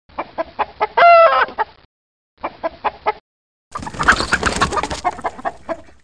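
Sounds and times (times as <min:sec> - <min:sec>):
chicken clucking: 0:00.1 - 0:01.8, 0:02.4 - 0:03.2, 0:03.8 - 0:06.0
chicken giving a loud drawn-out squawk: 0:00.3 - 0:01.7, 0:02.5 - 0:06.0.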